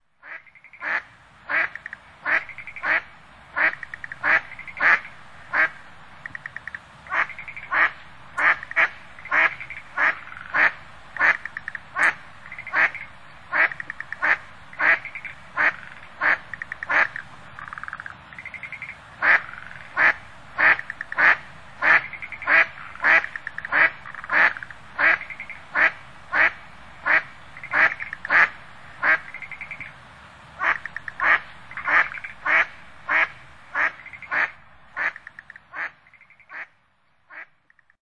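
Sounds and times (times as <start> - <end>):
Anas poecilorhyncha duck calling at sea: 0.2 - 3.0, 3.6 - 29.9, 30.6 - 36.7.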